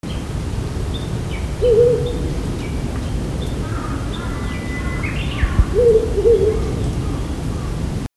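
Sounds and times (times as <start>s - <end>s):
steady low rumble: 0.3s - 7.0s
owl hooting: 1.4s - 2.9s, 3.6s - 7.7s.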